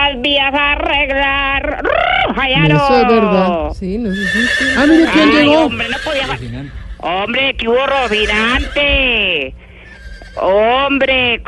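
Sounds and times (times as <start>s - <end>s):
speech: 0.1s - 9.6s, 10.4s - 11.4s
horse neighing: 4.1s - 10.8s.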